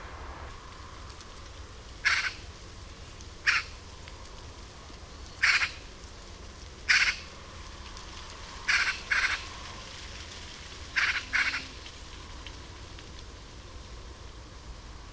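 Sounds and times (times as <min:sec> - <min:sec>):
Eurasian magpie (Pica pica) giving harsh rasping calls: 0:02.0 - 0:02.4, 0:03.4 - 0:03.7, 0:05.4 - 0:05.8, 0:06.9 - 0:07.2, 0:08.7 - 0:09.4, 0:11.0 - 0:11.7.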